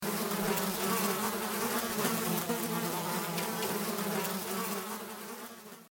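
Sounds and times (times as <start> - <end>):
flies: 0.0 - 5.9.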